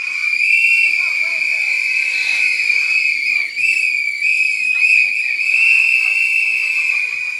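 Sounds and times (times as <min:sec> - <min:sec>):
faint crowd noise and voices: 0:00.0 - 0:07.3
shrill whistles blown by many audience members answering a poll: 0:00.0 - 0:07.3.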